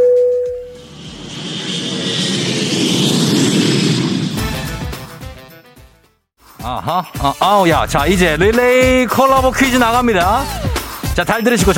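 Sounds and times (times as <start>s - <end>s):
jet airplane roaring on takeoff: 0.6s - 5.8s
speech: 6.8s - 10.6s, 11.2s - 11.7s.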